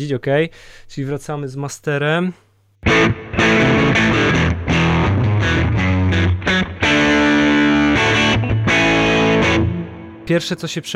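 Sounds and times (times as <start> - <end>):
speech: 0.0 - 3.2, 10.3 - 10.9
electric guitar playing rock chords through an overdriven amplifier: 2.8 - 10.3.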